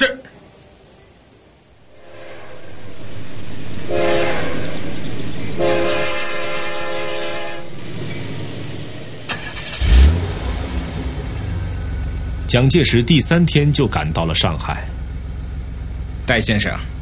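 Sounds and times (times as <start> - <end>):
car driving past with engine rumble: 1.7 - 17.0
car horn honking: 3.8 - 7.8
speech: 12.5 - 15.0, 16.3 - 16.9.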